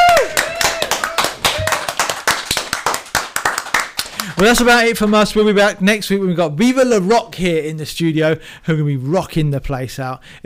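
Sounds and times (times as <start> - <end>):
people whooping: 0.0 - 2.2
small group clapping: 0.0 - 5.1
speech: 4.4 - 10.4.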